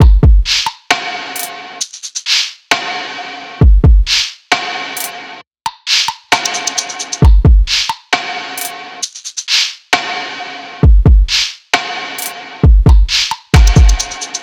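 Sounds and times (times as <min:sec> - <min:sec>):
drum loop: 0:00.0 - 0:02.5, 0:03.6 - 0:04.3, 0:05.0 - 0:09.7, 0:10.8 - 0:11.5, 0:12.2 - 0:14.4.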